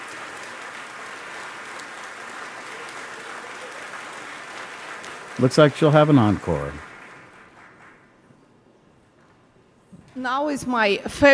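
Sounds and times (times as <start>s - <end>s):
large audience applause in a concert hall: 0.0s - 8.3s
speech: 5.4s - 6.9s, 10.2s - 11.3s.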